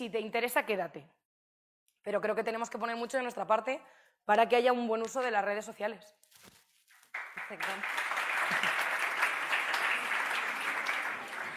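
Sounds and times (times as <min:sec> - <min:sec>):
speech: 0:00.0 - 0:01.2, 0:02.0 - 0:06.6, 0:07.4 - 0:08.6
audience applauding at a live talk: 0:07.1 - 0:11.5.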